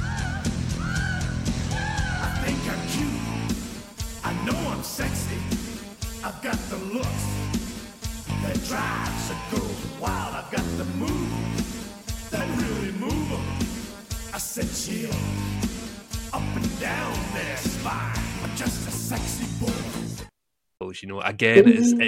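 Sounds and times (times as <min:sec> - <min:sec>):
wrestler's entrance theme song with a driving beat: 0:00.0 - 0:20.3
speech: 0:21.0 - 0:22.0
woman's squealing vocal in a wrestler's entrance theme song: 0:21.6 - 0:22.0.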